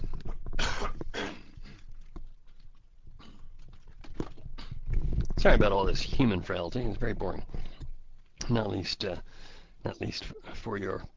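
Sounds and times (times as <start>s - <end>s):
person coughing after taking off a headset: 0.6s - 1.6s
speech: 5.4s - 7.6s, 8.5s - 11.1s.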